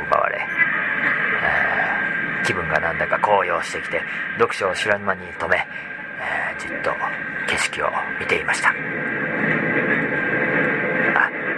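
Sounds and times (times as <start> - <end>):
thin whine over train rumble: 0.0 - 11.5
train rolling while crossing a river heard from inside: 0.0 - 11.5
speech: 2.5 - 9.5.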